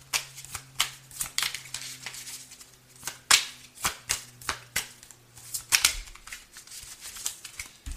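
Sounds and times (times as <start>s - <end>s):
playing cards being shuffled and handled: 0.1s - 7.9s.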